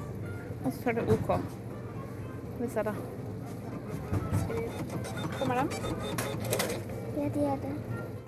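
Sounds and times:
speech: 0.6s - 1.7s, 2.6s - 3.3s, 4.0s - 8.0s
ticket machine printing cinema tickets at a cinema in Oslo Norway: 3.7s - 7.0s.

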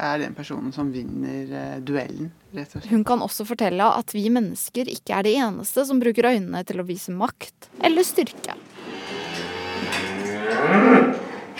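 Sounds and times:
speech: 0.0s - 9.2s
cow mooing loudly: 8.8s - 11.5s.

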